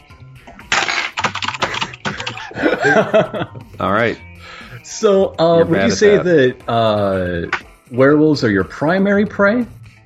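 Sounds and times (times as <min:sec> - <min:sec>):
typing on a mechanical keyboard: 0:00.7 - 0:02.4
laughter: 0:01.6 - 0:03.7, 0:05.6 - 0:06.5
speech: 0:02.6 - 0:09.8.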